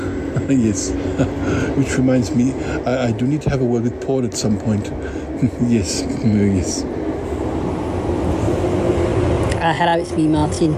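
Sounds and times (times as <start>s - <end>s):
train rolling along the rails: 0.0s - 10.7s
laughter: 0.3s - 3.1s
speech: 0.5s - 7.0s, 9.7s - 10.7s.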